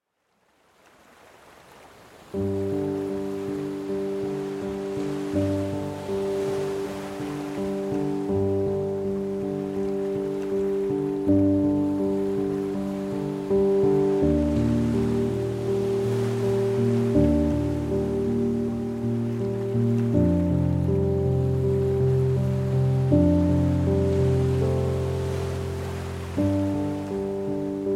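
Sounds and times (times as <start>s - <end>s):
ocean waves: 0.2s - 27.9s
piano: 2.3s - 27.9s.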